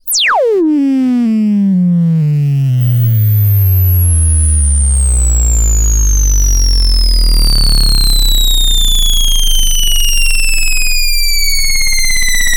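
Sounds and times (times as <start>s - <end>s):
long rising and falling high-low two-tone modular synth wobble: 0.0s - 12.5s.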